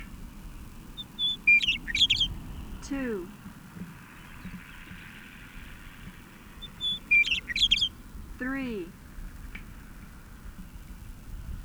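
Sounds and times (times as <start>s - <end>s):
bird song with high bright chirps and trills: 0.0s - 8.9s
speech: 2.9s - 3.4s.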